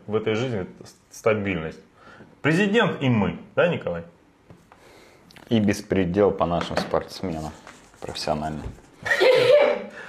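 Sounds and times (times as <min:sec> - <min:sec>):
speech: 0:00.1 - 0:04.2, 0:05.5 - 0:09.5
person sneezing: 0:09.1 - 0:10.0.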